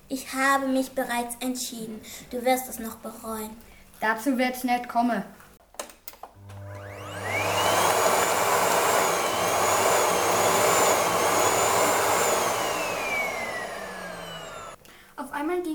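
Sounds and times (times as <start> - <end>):
speech: 0.1 - 5.4
vacuum gun whirring: 6.4 - 14.8.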